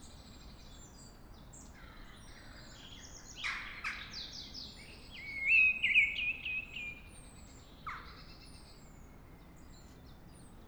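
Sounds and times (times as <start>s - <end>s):
Mistle Thrush song at dawn: 4.8s - 7.1s.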